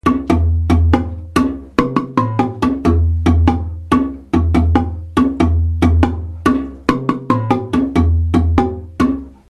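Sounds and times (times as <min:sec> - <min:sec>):
marimba bass variation: 0:00.0 - 0:09.4.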